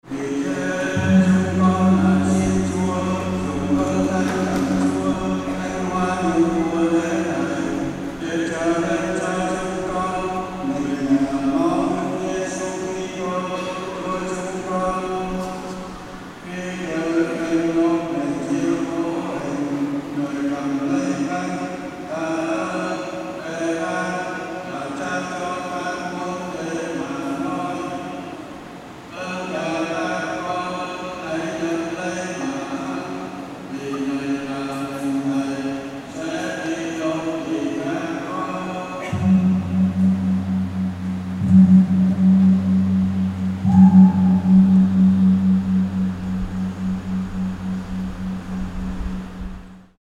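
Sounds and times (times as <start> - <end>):
praying chant in a church in Vietnam: 0.0 - 40.6, 43.4 - 45.1
gong: 0.2 - 16.3, 39.0 - 49.8.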